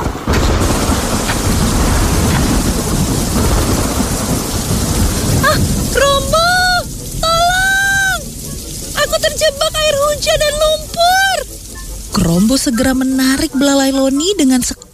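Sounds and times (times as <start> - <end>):
deep thunder-like rumble: 0.0 - 14.9
loud steady downpour of heavy rain: 0.0 - 14.9
high wavering cries: 5.3 - 14.2
speech: 12.3 - 14.8.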